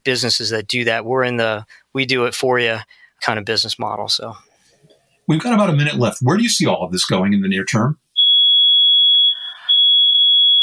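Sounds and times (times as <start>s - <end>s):
speech: 0.0s - 4.5s, 5.3s - 8.0s
fire alarm tone: 8.2s - 10.6s.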